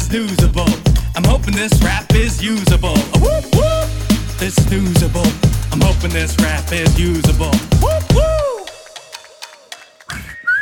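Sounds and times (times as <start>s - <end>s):
person whistling a tune: 0.0s - 8.8s, 10.1s - 10.6s
speech: 0.1s - 3.7s, 4.4s - 8.4s.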